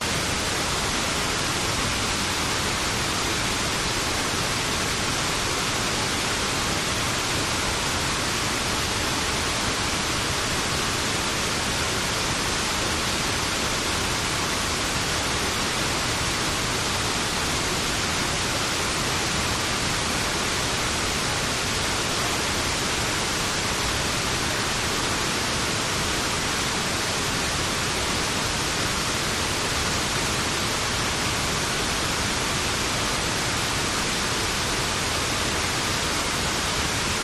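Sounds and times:
waterfall at medium distance: 0:00.0 - 0:37.2.

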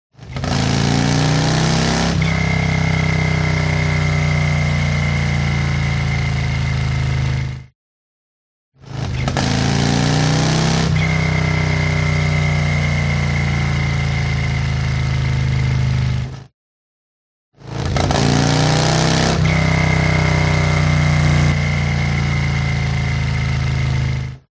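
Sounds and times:
Harley motorcycle accelerating and decelerating: 0:00.2 - 0:07.7, 0:08.8 - 0:16.5, 0:17.6 - 0:24.5
whistle: 0:11.0 - 0:14.5.

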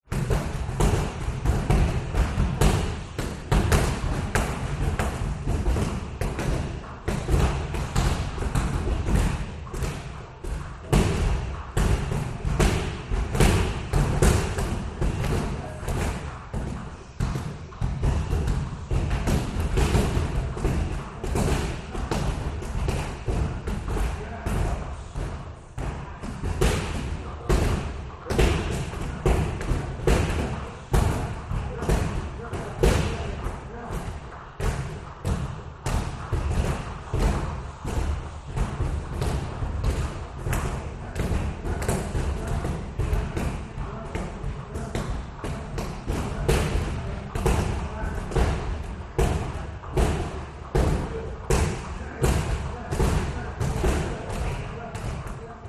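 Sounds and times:
kicking at a boxing club in California: 0:00.1 - 0:55.2
boxing at a boxing club in California: 0:00.1 - 0:55.6.

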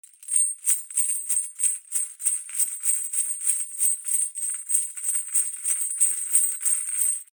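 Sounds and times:
chains rattling: 0:00.1 - 0:07.3.

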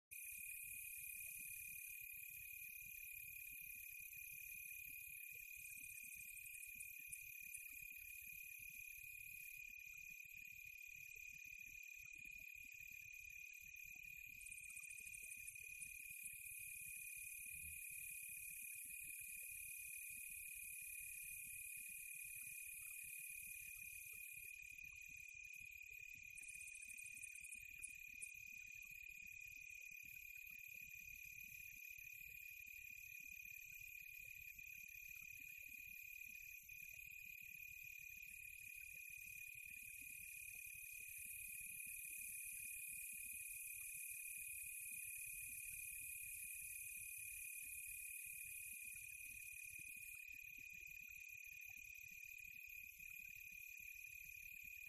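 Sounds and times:
crickets chirping on a quiet tropical night: 0:00.1 - 0:54.8.

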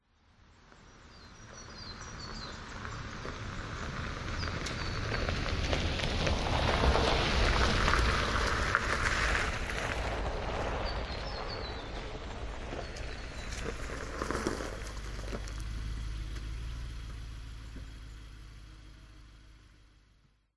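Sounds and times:
Nissan Patrol SUV approaching slowly in a circle on gravel: 0:00.5 - 0:20.5
birds: 0:00.9 - 0:05.8, 0:10.8 - 0:18.3.

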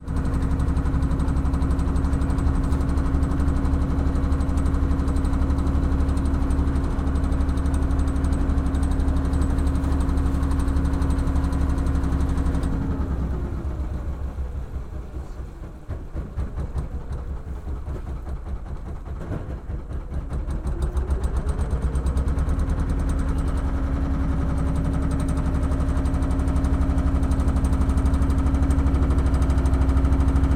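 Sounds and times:
motorboat engine running slow almost stalling on the Mekong river in Ben Tre: 0:00.0 - 0:30.5.

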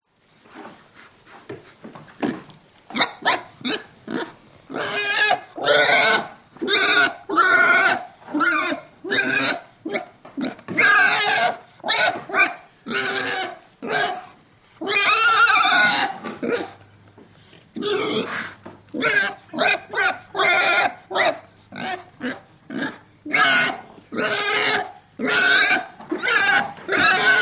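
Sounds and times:
pig: 0:00.5 - 0:27.4.

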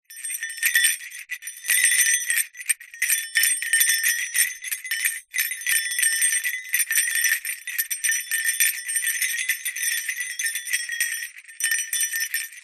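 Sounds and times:
jester hat bells jingling with movement: 0:00.1 - 0:12.6.

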